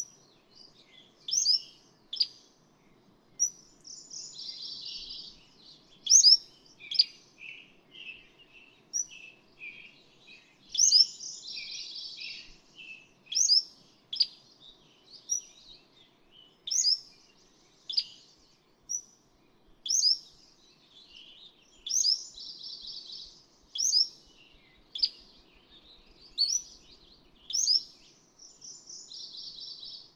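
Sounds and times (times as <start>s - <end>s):
Cordilleran flycatcher song: 0.0s - 19.1s, 19.8s - 30.1s
soft Cordilleran flycatcher chirps: 0.0s - 30.1s.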